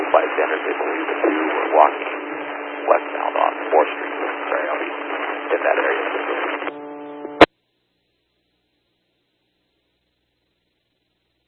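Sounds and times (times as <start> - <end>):
buzzy humming burst of radio transmission static: 0.0 - 7.5
speech: 0.1 - 6.7.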